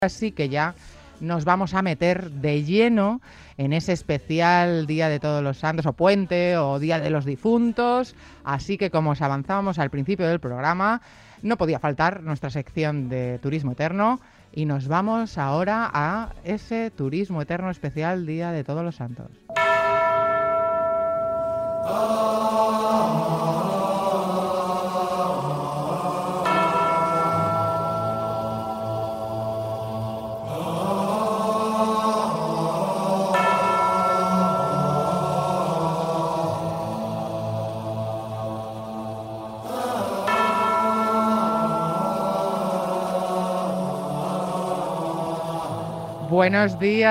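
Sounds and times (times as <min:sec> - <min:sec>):
speech: 0:00.0 - 0:20.0, 0:21.8 - 0:23.3, 0:46.4 - 0:47.0
church bells ringing: 0:19.5 - 0:47.0.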